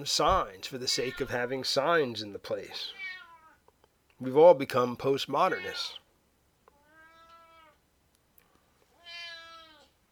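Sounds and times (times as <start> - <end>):
speech: 0.0 - 3.0, 4.2 - 6.0
cat complaining with faint drawn-out meows: 1.0 - 1.4, 2.9 - 3.6, 5.5 - 6.0, 6.7 - 7.8, 8.9 - 9.9.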